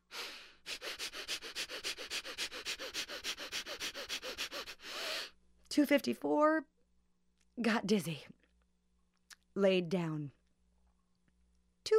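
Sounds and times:
rapid nasal breath-of-fire yoga breathing: 0:00.0 - 0:05.4
speech: 0:05.8 - 0:06.7, 0:07.6 - 0:08.4, 0:09.6 - 0:10.4.

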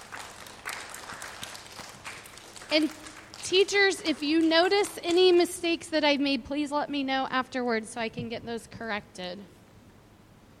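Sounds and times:
applause for students at a chapel gathering: 0:00.0 - 0:05.3
speech: 0:02.7 - 0:09.6.

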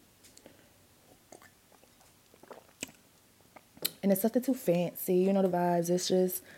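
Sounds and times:
person gulping wine: 0:00.4 - 0:04.0
person sipping wine: 0:00.4 - 0:04.0
soft wet mouth clicks: 0:01.3 - 0:04.0
speech: 0:04.1 - 0:06.5.

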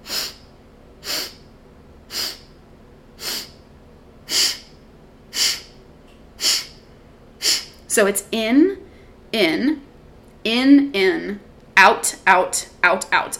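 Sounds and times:
short sharp nasal breath bursts in a four-part breath exercise: 0:00.0 - 0:01.5, 0:02.1 - 0:02.6, 0:03.2 - 0:03.6, 0:04.3 - 0:05.8, 0:06.4 - 0:06.8, 0:07.4 - 0:07.8
speech: 0:08.0 - 0:13.3.

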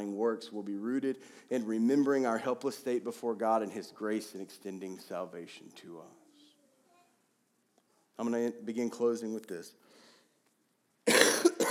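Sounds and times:
speech: 0:00.0 - 0:06.2, 0:08.2 - 0:09.8
person coughing into the microphone: 0:11.1 - 0:11.6.

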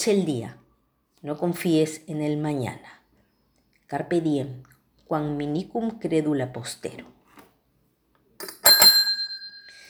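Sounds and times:
speech: 0:00.0 - 0:00.6, 0:01.2 - 0:03.0, 0:03.9 - 0:07.2
small metallic bell struck: 0:08.4 - 0:09.8.

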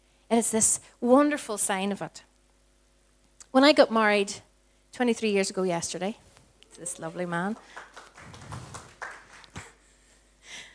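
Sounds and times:
speech: 0:00.3 - 0:02.3, 0:03.5 - 0:06.2, 0:06.8 - 0:08.0
breathing: 0:04.6 - 0:04.9, 0:09.9 - 0:10.7
faint shuffling: 0:05.7 - 0:09.8
sparse half-hearted clapping from audience: 0:06.6 - 0:09.9.

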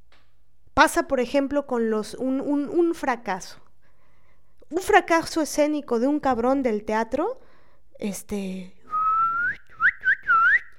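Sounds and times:
speech: 0:00.8 - 0:03.6, 0:04.7 - 0:07.4, 0:08.0 - 0:08.8
person whistling in mock disapproval: 0:08.9 - 0:10.7.

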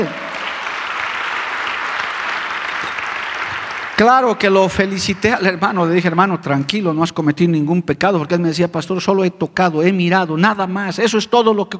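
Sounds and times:
speech: 0:00.0 - 0:00.2, 0:04.0 - 0:11.7
audience applauding: 0:00.0 - 0:05.5.

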